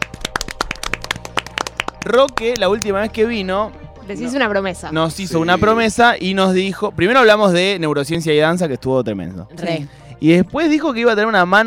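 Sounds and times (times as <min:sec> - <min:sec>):
crowd applauding: 0:00.0 - 0:02.8
speech: 0:02.0 - 0:11.6.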